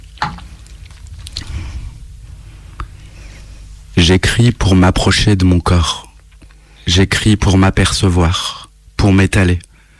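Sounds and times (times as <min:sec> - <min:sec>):
person sipping water: 0:00.0 - 0:03.9
quiet noise: 0:00.0 - 0:09.9
person swallowing water: 0:00.7 - 0:03.2
speech: 0:04.0 - 0:06.0, 0:06.9 - 0:09.7.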